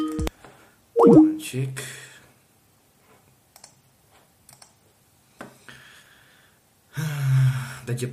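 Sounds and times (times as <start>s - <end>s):
speech: 1.0s - 2.0s, 7.9s - 8.1s
clicks on a computer keyboard: 3.6s - 3.8s, 4.5s - 4.8s.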